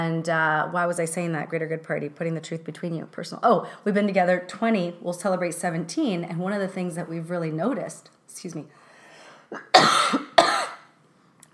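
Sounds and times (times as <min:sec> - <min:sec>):
speech: 0:00.0 - 0:08.8
person coughing harshly: 0:09.5 - 0:10.9.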